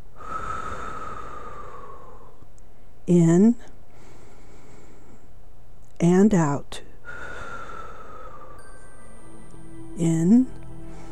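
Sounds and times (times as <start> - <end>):
deep breath during a guided breathing exercise: 0.1 - 2.9, 3.9 - 5.4, 7.0 - 9.4, 10.7 - 11.1
speech: 3.1 - 3.7, 6.0 - 6.8, 10.0 - 10.6.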